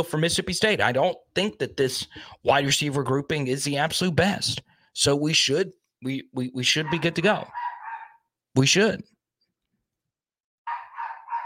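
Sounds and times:
speech: 0.0 - 7.6, 8.6 - 9.1
dog yapping: 6.8 - 8.3, 10.7 - 11.4.

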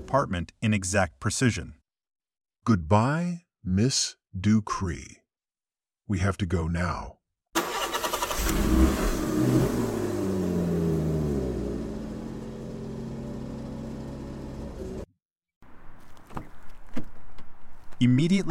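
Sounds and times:
speech: 0.1 - 1.8, 2.6 - 5.2, 6.1 - 7.2, 8.4 - 9.8, 18.0 - 18.4
government vehicle car engine cranking, starting and revving: 7.6 - 15.1.

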